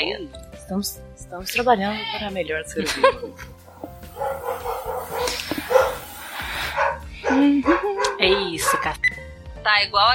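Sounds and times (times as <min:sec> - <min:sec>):
speech: 0:00.0 - 0:03.6, 0:07.3 - 0:10.1
laughter: 0:02.8 - 0:03.5
neighbor's dog barking and yipping: 0:03.7 - 0:09.0.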